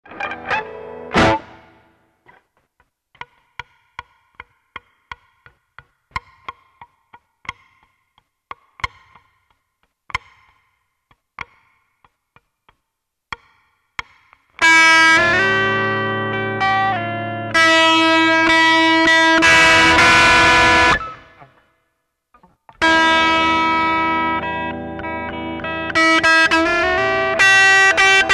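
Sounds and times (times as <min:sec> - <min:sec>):
guitar plinking: 0:00.1 - 0:01.6, 0:13.3 - 0:21.6, 0:22.4 - 0:28.3.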